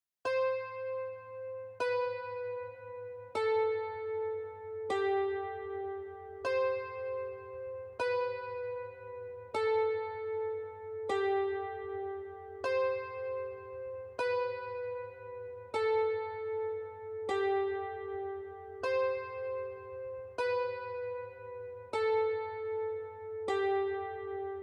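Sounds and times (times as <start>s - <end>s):
dulcimer loop in E minor at 155 BPM: 0.3s - 24.6s.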